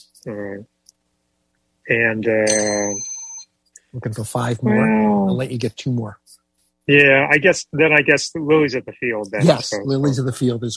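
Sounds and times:
speech: 0.0s - 0.8s, 1.9s - 3.1s, 3.9s - 10.7s
laughter: 1.9s - 2.9s, 4.0s - 6.1s, 6.9s - 10.7s
bright high bell rung for a correct answer: 2.3s - 3.4s.

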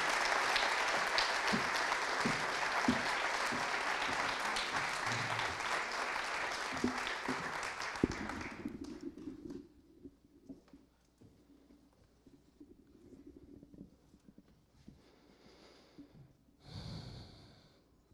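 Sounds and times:
louder single claps: 0.0s - 8.6s
crowd applauding: 0.0s - 9.2s.

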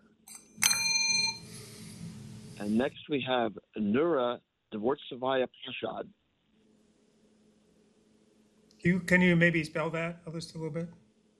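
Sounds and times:
bell rung for a correct answer in a quiz game: 0.3s - 1.8s
speech: 2.6s - 6.2s, 8.8s - 11.0s.

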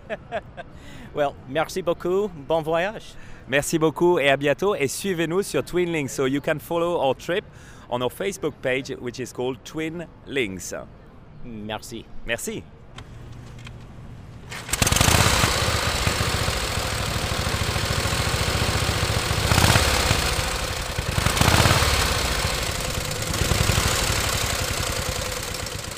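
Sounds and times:
speech: 0.1s - 13.1s
1918 Harley-Davidson motorcycle engine running: 14.5s - 25.9s.

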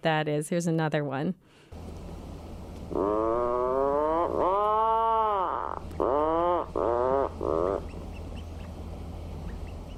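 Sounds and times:
speech: 0.0s - 1.9s, 2.9s - 3.4s, 4.3s - 4.8s
adult puffin giving a deep groaning call from a burrow: 2.9s - 8.1s.

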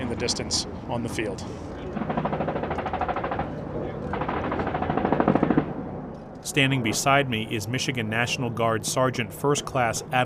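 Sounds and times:
speech: 0.1s - 2.1s, 6.4s - 10.2s
small arms fire during military training exercise: 2.0s - 5.8s.

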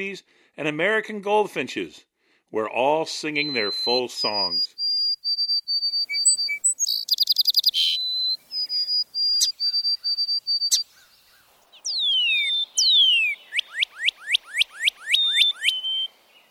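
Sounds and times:
speech: 0.0s - 4.7s
white-throated sparrow singing whistled song: 3.4s - 16.4s.

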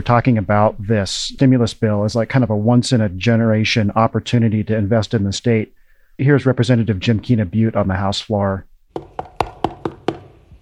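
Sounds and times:
speech: 0.0s - 10.0s
knocking on a door: 9.0s - 10.5s.

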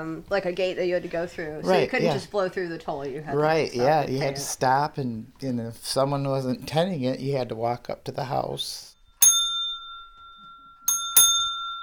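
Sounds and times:
speech: 0.0s - 8.9s
old mechanical doorbell from a former toll house ringing: 9.0s - 11.8s.

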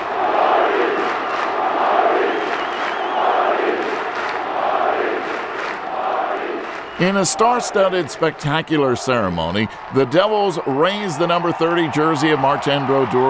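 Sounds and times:
hockey arena crowd chanting in unison: 0.0s - 8.2s
speech: 7.0s - 13.2s.

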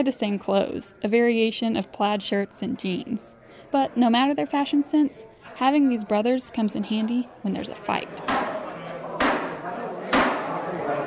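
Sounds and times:
speech: 0.0s - 8.5s
steady murmur of retirees' voices before a union meeting: 0.0s - 11.0s
coffee mug slammed onto a table: 9.2s - 10.5s.

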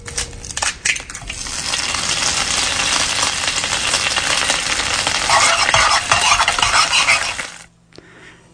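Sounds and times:
egg cracking: 0.0s - 7.7s
egg sizzling in a hot pan: 1.1s - 7.7s
utensil scraping and stirring egg in a pan: 2.0s - 7.7s.

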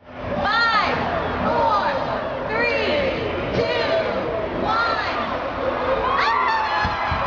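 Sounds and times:
crowd chatter: 0.0s - 7.2s
large outdoor crowd cheering at holiday lighting ceremony in sixty-degree weather: 0.8s - 7.2s
excited shouts and whoops: 5.8s - 7.2s.

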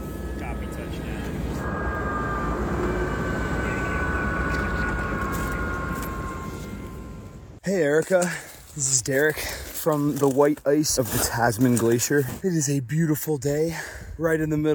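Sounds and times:
tour helicopter flying up onto a glacier: 0.0s - 7.6s
speech: 7.7s - 14.7s.

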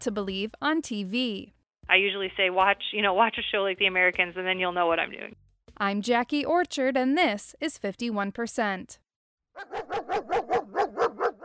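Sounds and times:
speech: 0.0s - 9.0s, 9.6s - 11.1s
2-year-old German Shepherd police dog barking while tracking a scent: 9.6s - 11.4s.

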